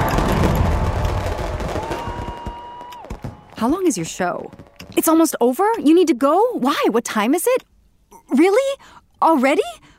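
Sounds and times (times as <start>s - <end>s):
fireworks crackling and popping: 0.0s - 5.2s
speech: 3.6s - 7.7s, 8.3s - 9.9s.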